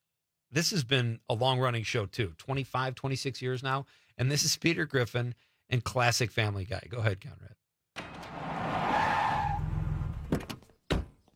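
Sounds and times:
speech: 0:00.5 - 0:07.6
pickup truck skidding to a stop with tires screeching: 0:08.0 - 0:10.4.

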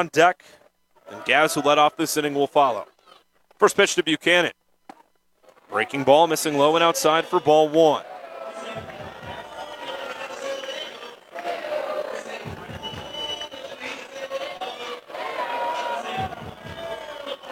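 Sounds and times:
speech: 0:00.0 - 0:02.9, 0:03.6 - 0:04.6, 0:05.7 - 0:08.1, 0:08.7 - 0:09.0
baseball stadium crowd cheering: 0:05.7 - 0:17.5
rhythmic low thumps: 0:08.7 - 0:10.1, 0:12.4 - 0:13.7, 0:16.2 - 0:17.3.

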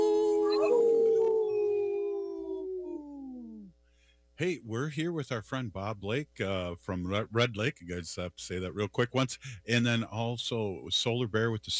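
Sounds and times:
wolf howling: 0:00.0 - 0:03.7
speech: 0:04.4 - 0:11.7.

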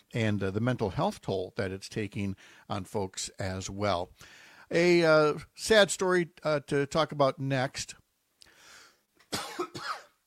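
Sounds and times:
speech: 0:00.1 - 0:08.0
person coughing: 0:09.3 - 0:10.2.

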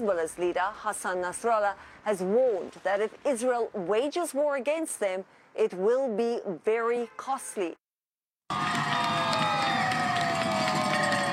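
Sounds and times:
speech: 0:00.0 - 0:07.8, 0:08.5 - 0:09.0
teachers cheering and shouting in celebration after a strike deal in Newton, Massachusetts: 0:08.5 - 0:11.3.

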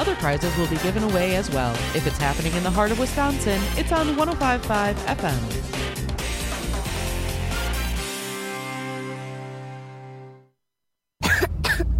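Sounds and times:
speech: 0:00.1 - 0:05.9
sustained musical chord: 0:06.3 - 0:10.5
child coughing: 0:11.2 - 0:11.9.

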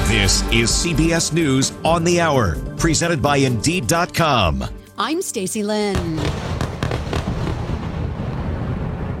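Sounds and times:
speech: 0:00.1 - 0:06.6
explosions from airstrikes: 0:05.9 - 0:09.1.

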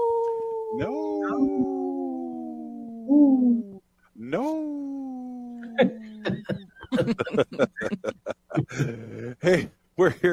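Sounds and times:
wolf howling: 0:00.0 - 0:03.6
speech: 0:00.8 - 0:01.8, 0:03.1 - 0:04.9, 0:05.8 - 0:10.3
laughter: 0:05.6 - 0:09.7.

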